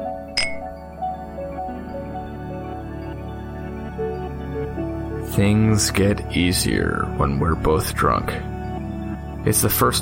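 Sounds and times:
steady low tonal background: 0:00.0 - 0:10.0
two glasses of gin clinking in a toast: 0:00.4 - 0:00.8
speech: 0:05.4 - 0:08.5, 0:09.4 - 0:10.0.

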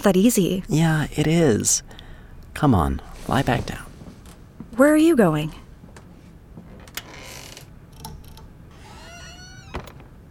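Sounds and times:
speech: 0:00.0 - 0:02.0, 0:02.6 - 0:03.9, 0:04.8 - 0:05.6
faint knocks and rustles: 0:03.1 - 0:04.9, 0:05.7 - 0:07.2
closet door creaking and shutting with a click: 0:06.7 - 0:10.2.

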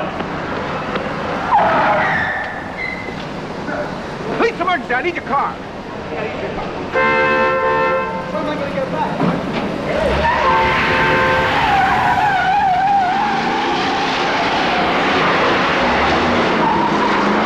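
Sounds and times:
car engines roaring in a film car chase: 0:00.0 - 0:17.4
tires screeching in long skids: 0:00.0 - 0:17.4
voices mixed into the din: 0:03.6 - 0:13.4
blaring horn-like tone: 0:06.9 - 0:08.3, 0:10.0 - 0:13.2.

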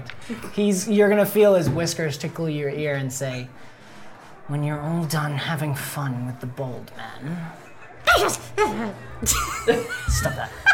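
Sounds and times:
speech: 0:00.3 - 0:03.7, 0:04.5 - 0:07.6, 0:08.2 - 0:10.6
person sneezing: 0:08.0 - 0:09.0
laughter: 0:08.5 - 0:10.7.

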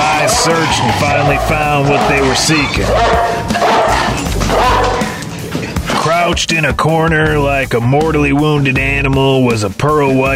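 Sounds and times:
big dog barking and snarling: 0:00.0 - 0:06.4
speech: 0:00.2 - 0:04.7, 0:06.2 - 0:10.3.

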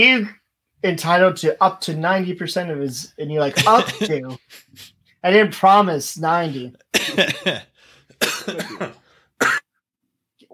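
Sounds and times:
speech: 0:00.0 - 0:09.6
person with a raw sore throat coughing harshly: 0:03.6 - 0:04.4, 0:07.0 - 0:09.6
laughter: 0:03.6 - 0:04.9, 0:07.1 - 0:07.7.

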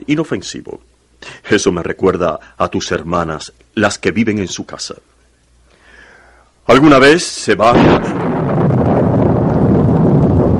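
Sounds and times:
speech: 0:00.1 - 0:05.2, 0:06.7 - 0:08.3
deep continuous rumble beneath storm wind: 0:07.7 - 0:10.5
roaring storm wind: 0:07.7 - 0:10.5.

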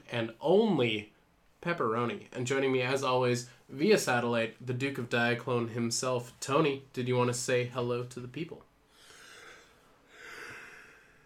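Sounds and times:
speech: 0:00.1 - 0:08.7
quiet breathy yawn: 0:09.0 - 0:11.2.

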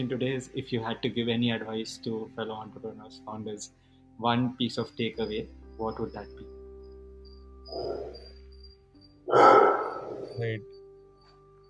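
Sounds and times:
speech: 0:00.0 - 0:06.5, 0:07.7 - 0:08.2, 0:09.3 - 0:09.6, 0:10.4 - 0:10.7
dog barking: 0:09.3 - 0:10.3.

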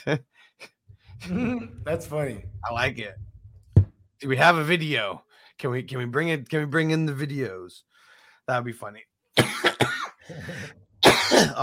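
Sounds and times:
speech: 0:00.0 - 0:03.3, 0:04.2 - 0:07.9, 0:08.5 - 0:11.6
sharp coughs: 0:09.4 - 0:11.6
raspy wheezing throat-clearing: 0:10.2 - 0:10.8.

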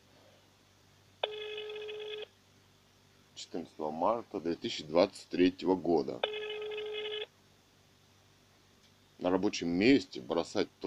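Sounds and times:
telephone ring tone from a call placed to a mayor's office: 0:01.2 - 0:02.3, 0:06.2 - 0:07.3
speech: 0:03.4 - 0:06.4, 0:09.3 - 0:10.8.

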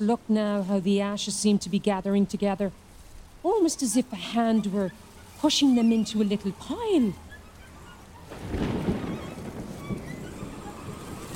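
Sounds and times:
speech: 0:00.0 - 0:07.2
steady rain pouring down: 0:00.0 - 0:11.3
low rumble of thunder: 0:08.2 - 0:11.3.

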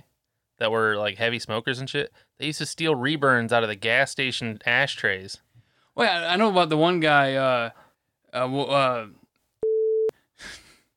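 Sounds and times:
speech: 0:00.6 - 0:05.4, 0:06.0 - 0:09.2, 0:10.4 - 0:10.6
censor beep over a spoken name: 0:09.6 - 0:10.1.

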